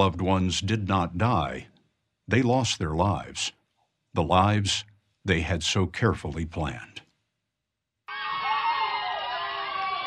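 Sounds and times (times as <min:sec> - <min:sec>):
speech: 0:00.0 - 0:01.7, 0:02.3 - 0:03.6, 0:04.2 - 0:07.0
crowd cheering: 0:08.1 - 0:10.0.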